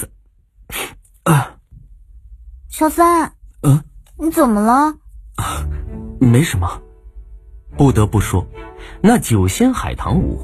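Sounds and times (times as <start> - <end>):
person sneezing: 0.7 - 1.6
speech: 2.8 - 5.6, 6.2 - 6.8, 7.8 - 10.4.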